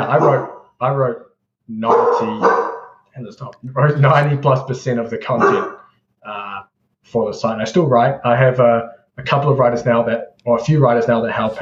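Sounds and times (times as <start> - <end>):
dog barking: 0.0 - 0.6, 1.8 - 3.0, 5.4 - 5.9
speech: 0.1 - 2.6, 3.2 - 6.4, 7.0 - 11.6.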